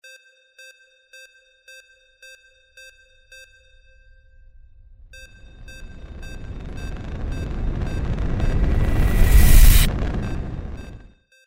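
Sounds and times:
sci-fi magic fire ending: 4.9 - 11.1.

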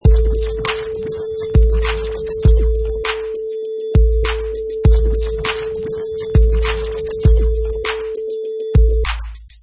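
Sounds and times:
fast vinyl scratching: 0.0 - 3.2, 4.3 - 8.0
drum beat: 0.0 - 9.6.

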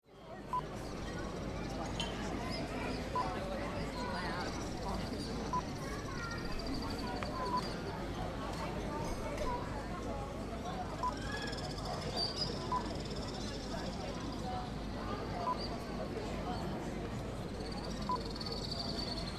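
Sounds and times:
street ambience in Dubrovnik: 0.1 - 19.3.

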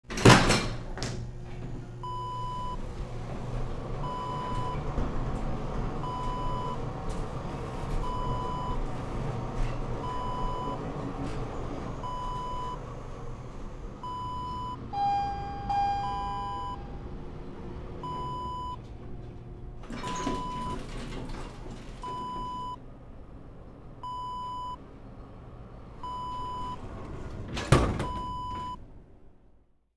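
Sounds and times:
elevator interior ambience: 0.1 - 29.6.

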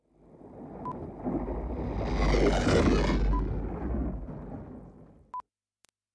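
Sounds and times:
spaceship whoosh: 0.0 - 5.3.

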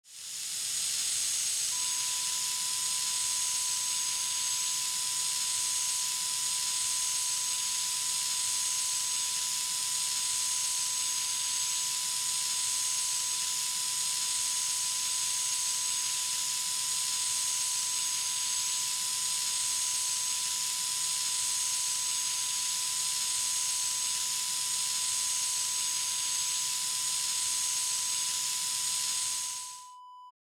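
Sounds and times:
air hiss: 0.1 - 29.8.

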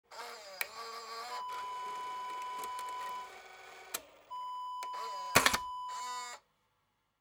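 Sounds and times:
camcorder tape eject: 0.1 - 6.4.

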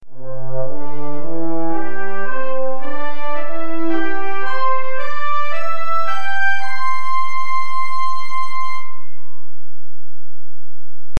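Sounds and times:
orchestral brass intro loop in C at 110 BPM: 0.1 - 9.0.

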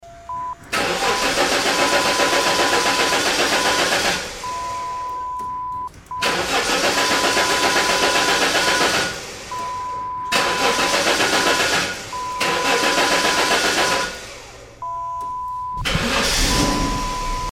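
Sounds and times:
car engine failing to start: 0.0 - 17.5.

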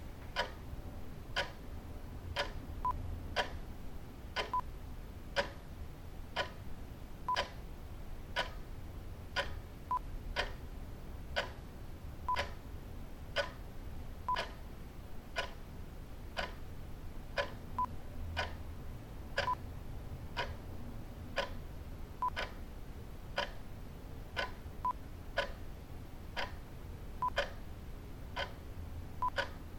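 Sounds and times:
clock ticking: 0.2 - 0.7, 1.2 - 1.7, 2.3 - 3.6, 4.3 - 7.7, 8.3 - 11.7, 12.3 - 14.7, 15.3 - 16.7, 17.3 - 19.7, 20.3 - 20.7, 21.2 - 29.7.

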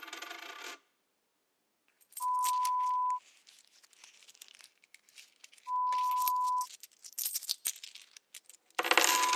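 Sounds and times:
loose change: 1.9 - 9.2.

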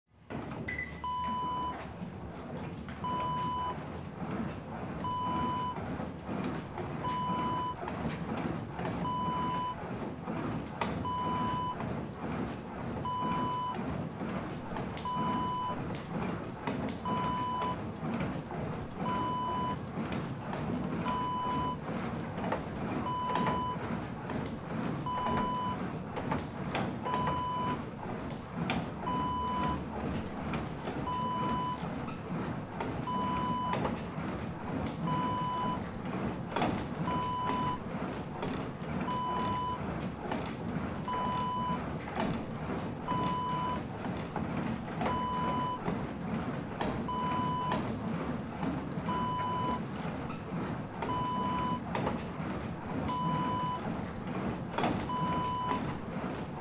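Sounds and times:
stairmaster exercise machine: 0.1 - 56.6.

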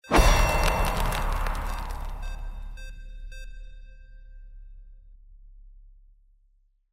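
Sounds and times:
sci-fi magic ice rune effect: 0.0 - 2.8.

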